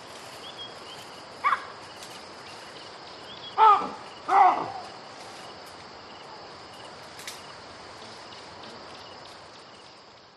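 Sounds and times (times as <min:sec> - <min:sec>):
quiet hissing background: 0:00.0 - 0:10.3
baboon barking: 0:01.4 - 0:01.7, 0:03.6 - 0:04.9.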